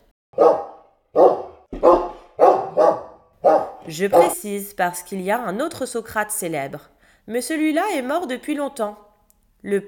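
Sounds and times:
dog barking: 0:00.3 - 0:04.4
speech: 0:03.9 - 0:09.0, 0:09.6 - 0:09.8.

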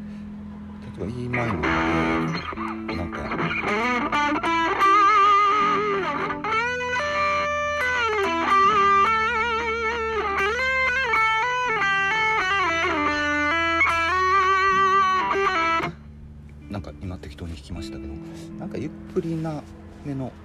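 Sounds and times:
steady low backing music: 0:00.0 - 0:20.4
speech: 0:01.0 - 0:03.8
distorted electric guitar fast improvised solo: 0:01.3 - 0:16.9.

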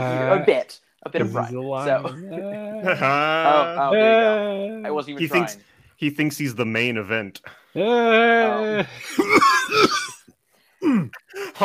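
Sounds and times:
speech: 0:00.0 - 0:10.2, 0:10.8 - 0:11.6
drawn-out voiced groan: 0:02.0 - 0:04.9, 0:07.8 - 0:10.0
harsh throaty coughs: 0:09.1 - 0:11.6.

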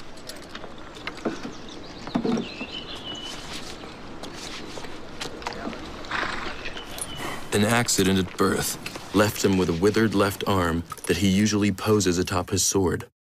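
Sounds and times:
horse hooves clip-clopping: 0:00.0 - 0:10.6
speech: 0:07.6 - 0:13.1.

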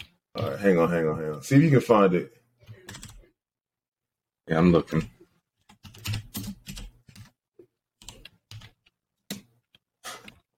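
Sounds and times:
speech: 0:00.4 - 0:03.0, 0:04.5 - 0:05.2
typing on a mechanical computer keyboard: 0:02.8 - 0:03.2, 0:05.7 - 0:07.4, 0:08.0 - 0:09.8.

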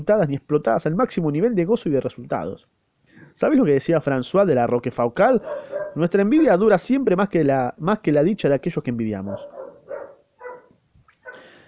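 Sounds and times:
speech: 0:00.0 - 0:02.8, 0:03.4 - 0:09.6
female dog barking: 0:05.4 - 0:06.0, 0:09.2 - 0:11.5.

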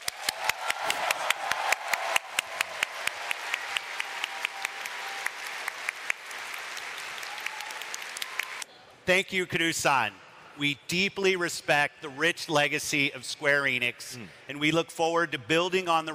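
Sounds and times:
audience applause: 0:00.0 - 0:08.7
speech: 0:09.1 - 0:16.1.

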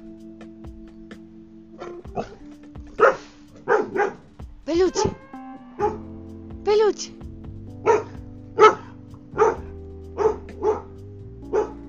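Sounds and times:
dog barking: 0:01.8 - 0:02.4, 0:03.0 - 0:04.3, 0:05.8 - 0:06.0, 0:07.8 - 0:11.8
person calling out: 0:04.7 - 0:05.2, 0:06.6 - 0:07.2
speech: 0:06.9 - 0:07.3.

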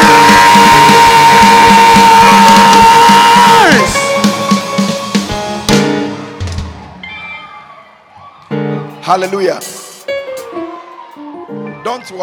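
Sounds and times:
scattered whoops and shouts from church audience: 0:00.0 - 0:04.0, 0:06.8 - 0:08.5
church audience shouting and cheering: 0:00.0 - 0:05.0, 0:06.2 - 0:12.2
speech: 0:09.1 - 0:09.8, 0:11.8 - 0:12.2.

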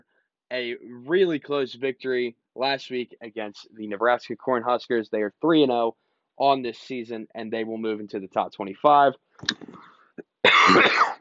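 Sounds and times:
speech: 0:00.5 - 0:09.8
man clearing his throat: 0:09.5 - 0:11.1
man coughing: 0:09.6 - 0:11.1.

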